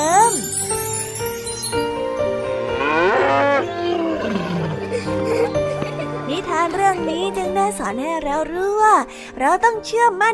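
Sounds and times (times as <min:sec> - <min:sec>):
steady music: 0:00.0 - 0:10.3
calf mooing: 0:02.8 - 0:04.4
speech: 0:07.0 - 0:10.3.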